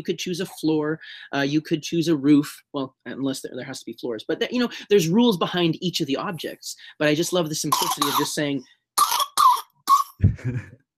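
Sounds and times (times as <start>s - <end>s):
speech: 0.0s - 8.8s, 10.2s - 10.8s
smoker's harsh raspy coughs: 7.7s - 8.4s, 9.0s - 10.3s.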